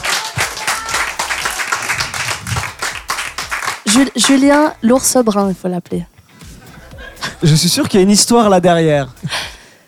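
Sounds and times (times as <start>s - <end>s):
crowd applauding: 0.0s - 4.8s
speech: 3.9s - 6.1s, 7.4s - 9.5s.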